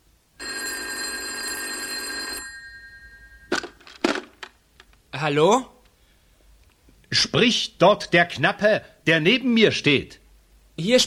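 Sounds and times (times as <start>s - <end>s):
loud buzzy telephone bell ringing: 0.4s - 3.8s
telephone receiver clattering: 3.5s - 5.0s
speech: 5.2s - 5.7s, 7.3s - 10.2s, 10.8s - 11.0s.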